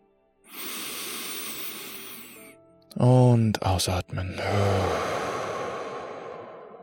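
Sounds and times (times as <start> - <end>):
deep inhalation: 0.5 - 2.5, 4.4 - 6.8
speech: 2.9 - 5.2.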